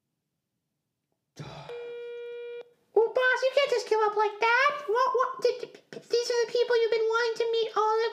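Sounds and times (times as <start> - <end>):
telephone ringing tone on a call: 1.7 - 2.6
speech: 4.0 - 8.1.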